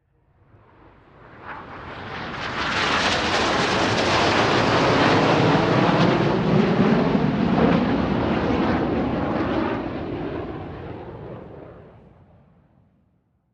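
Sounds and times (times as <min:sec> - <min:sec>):
jet planes flying overhead in formation: 0:00.4 - 0:12.6.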